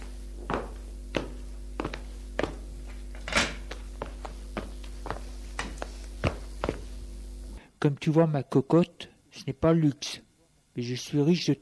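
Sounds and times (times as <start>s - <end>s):
soft footsteps: 0.0s - 7.2s
low steady hum: 0.0s - 11.6s
speech: 7.8s - 10.2s, 10.8s - 11.6s.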